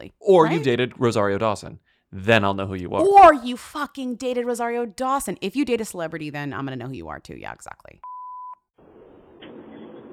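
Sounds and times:
speech: 0.3s - 8.1s
short electronic phone notification beep: 8.0s - 8.7s.

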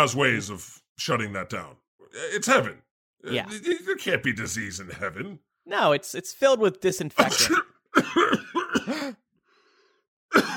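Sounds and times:
speech: 0.0s - 9.2s
person coughing after taking a hit from a bong: 7.2s - 9.2s, 10.3s - 10.5s.

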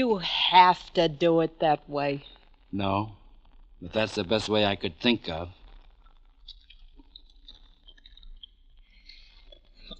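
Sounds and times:
speech: 0.0s - 3.2s, 3.8s - 5.6s
person chewing gum: 5.9s - 9.9s.

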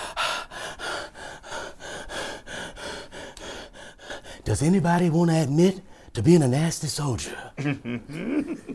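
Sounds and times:
voice imitating heavy rapid breathing of push-ups: 0.0s - 4.5s
speech: 4.4s - 8.7s
laughter: 7.6s - 8.7s.

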